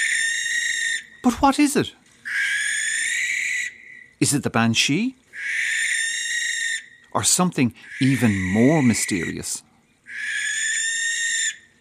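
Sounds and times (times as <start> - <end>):
barn owl screech: 0.0 - 1.4, 2.2 - 4.2, 5.4 - 7.0, 7.8 - 11.7
speech: 1.2 - 2.0, 4.2 - 5.7, 7.2 - 9.7.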